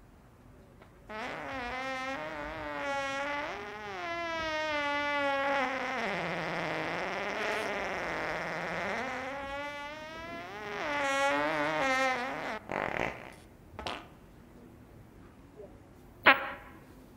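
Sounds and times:
fart: 1.1s - 14.2s.

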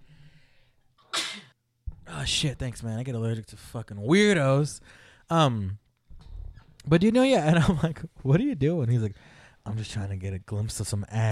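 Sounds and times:
person mimicking a loud sneeze: 1.1s - 1.6s
speech: 2.2s - 5.8s, 6.8s - 11.2s.

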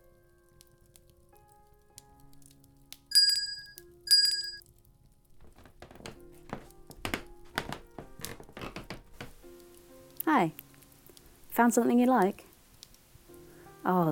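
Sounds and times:
shop counter bell dinging: 3.1s - 4.6s
soft thumps and shuffling knocks: 5.4s - 9.4s
speech: 10.3s - 10.6s, 11.6s - 12.5s, 13.8s - 14.1s.

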